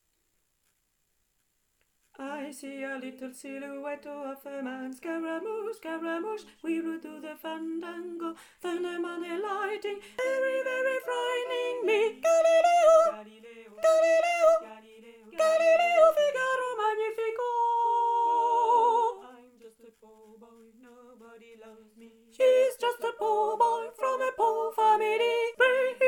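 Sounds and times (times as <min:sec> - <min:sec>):
soprano singing: 0:02.2 - 0:26.0.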